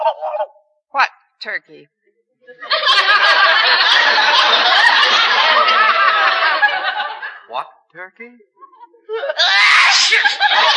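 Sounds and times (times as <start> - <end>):
speech: 1.4 - 4.3, 7.5 - 9.2
laughter: 2.5 - 7.6, 8.6 - 10.7
loud drawn-out sneeze from behind a couch: 9.5 - 10.4.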